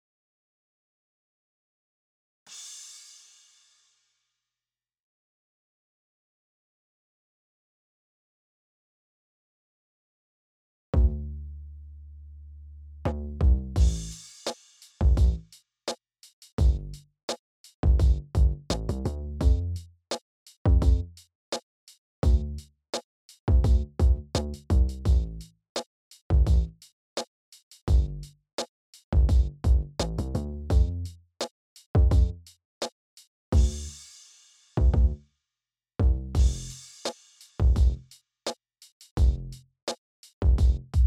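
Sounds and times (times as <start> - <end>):
EQed rhythm bass: 11.0 - 11.2, 13.1 - 14.2, 15.0 - 15.5, 16.6 - 17.0, 17.8 - 19.9, 20.7 - 21.2, 22.2 - 22.7, 23.5 - 25.5, 26.3 - 26.8, 27.9 - 28.4, 29.1 - 31.2, 32.0 - 32.5, 33.6 - 33.9, 34.8 - 35.2, 36.0 - 36.8, 37.6 - 38.1, 39.2 - 39.6, 40.4 - 41.0.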